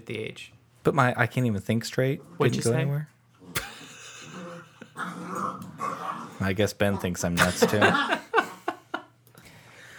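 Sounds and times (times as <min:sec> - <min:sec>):
speech: 0:00.1 - 0:03.2, 0:06.4 - 0:08.2
puppy growling and whimpering: 0:04.2 - 0:06.4
laughter: 0:07.4 - 0:09.1.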